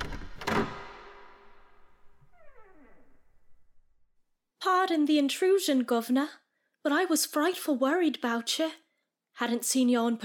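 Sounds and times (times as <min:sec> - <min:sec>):
door latch clunk: 0:00.0 - 0:03.2
door swinging open with squealing hinge creak: 0:00.0 - 0:03.8
speech: 0:04.8 - 0:08.8, 0:09.4 - 0:10.2.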